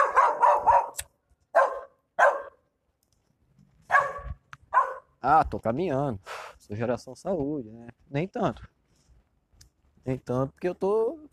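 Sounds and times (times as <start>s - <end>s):
dog barking inside a house: 0.0s - 2.6s, 3.9s - 5.2s
speech: 5.2s - 8.8s, 10.0s - 11.3s.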